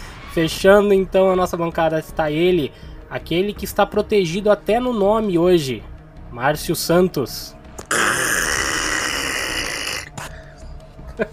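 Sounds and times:
speech: 0.4 - 8.0
person grunting sputters: 7.8 - 10.3
person voicing creaking growl imitating a neck turning 360 degrees: 7.8 - 10.3.

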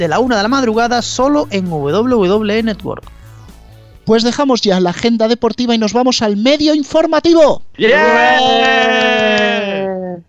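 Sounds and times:
speech: 0.0 - 3.2, 4.0 - 9.2
recorded drawn-out shout used as section intro: 7.8 - 10.2.

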